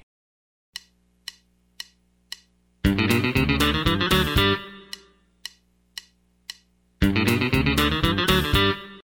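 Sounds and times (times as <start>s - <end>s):
country rock music: 2.9s - 5.1s, 7.0s - 9.0s.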